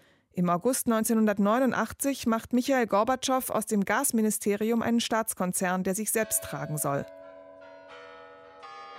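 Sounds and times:
speech: 0.4 - 7.2
large Kremlin bells in Moscow ringing in the new year: 6.2 - 8.9.

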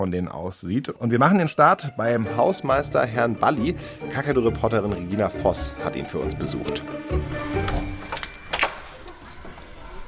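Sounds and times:
speech: 0.0 - 8.0
large bunch of elevator, master and fuse box keys jangling: 7.6 - 9.8.

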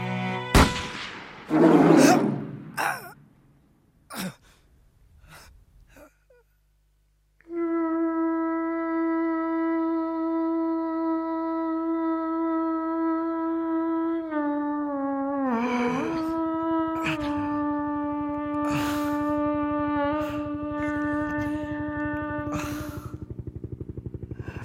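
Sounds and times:
hunter's gunshot at a female polar bear: 0.6 - 2.8
gasping groaning vocal sounds: 2.0 - 3.2, 4.1 - 4.6, 15.4 - 19.5, 20.1 - 23.4
steady tonal musical drone: 7.5 - 24.6.

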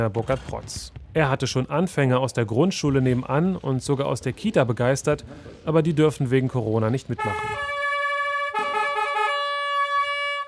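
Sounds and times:
speech: 0.0 - 7.8
trumpet playing one long loud note in a sports hall: 7.2 - 10.4.

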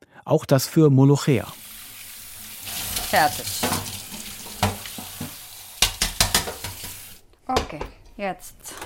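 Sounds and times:
speech: 0.3 - 1.6, 3.1 - 3.8, 7.5 - 8.8
onions sizzling while frying in a pan: 1.5 - 7.2
clattering stirs in a pan: 2.9 - 7.2.

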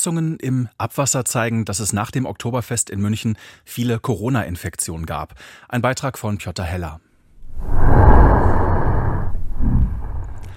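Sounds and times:
speech: 0.0 - 8.5
snapping turtle deep breathy rasping recorded underwater: 8.1 - 10.5.

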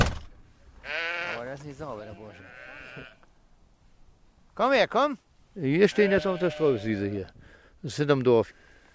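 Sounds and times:
outdoor noise on a litter meadow behind a village: 0.0 - 8.9
Pomeranian landrace sheep bleating on a litter meadow behind a village: 0.8 - 3.3, 5.7 - 7.1
speech: 1.6 - 3.2, 4.6 - 8.7.

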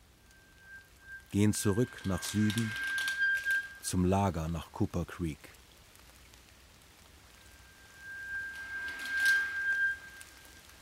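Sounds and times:
faint continuous high-pitched tone: 0.0 - 4.4, 7.1 - 10.7
soft steady rain: 0.0 - 10.7
speech: 1.3 - 2.9, 3.9 - 5.6.

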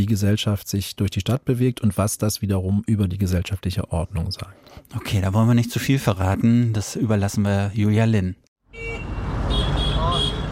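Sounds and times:
speech: 0.0 - 9.1
busy street traffic roar in Nairobi: 8.6 - 10.5
car horns honking in Nairobi street traffic: 8.7 - 10.5.

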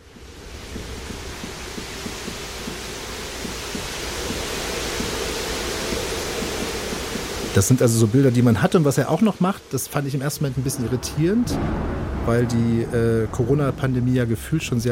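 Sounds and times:
artificial rain falling in a tropical house: 0.0 - 14.9
speech: 7.6 - 14.9.

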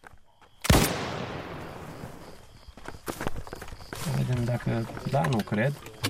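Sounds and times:
rifle shot fired at a jackal in a farm field: 0.7 - 2.2
people talking: 4.0 - 6.0.

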